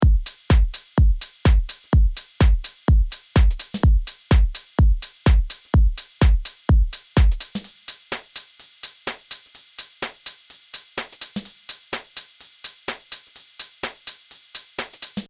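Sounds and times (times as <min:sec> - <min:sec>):
coffee drums: 0:00.0 - 0:15.2.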